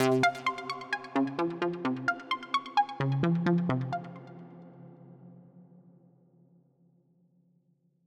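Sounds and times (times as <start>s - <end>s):
Serum synth arpeggio: 0.0s - 4.3s.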